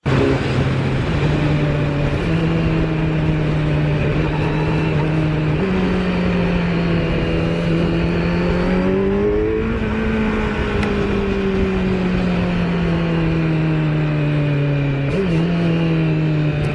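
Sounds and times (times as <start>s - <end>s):
motorcycle engine revving and shifting gears without clutch: 0.0s - 16.7s.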